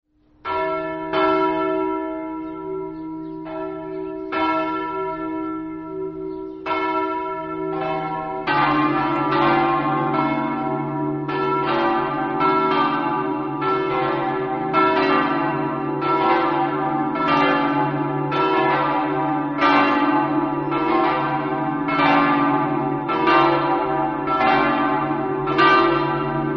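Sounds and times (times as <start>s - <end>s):
bells ringing in Pavia: 0.4s - 26.5s.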